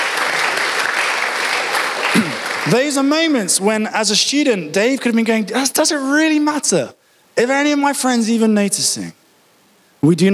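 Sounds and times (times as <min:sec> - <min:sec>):
audience applause at a church gathering: 0:00.0 - 0:03.4
speech: 0:02.7 - 0:09.2, 0:10.0 - 0:10.3.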